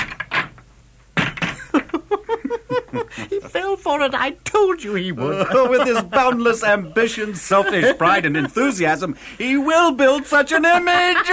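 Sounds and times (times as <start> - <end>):
door creaking open: 0.0 - 1.7
knocks: 1.2 - 2.0
laughter: 1.6 - 3.9, 5.0 - 11.3
speech: 3.1 - 11.3.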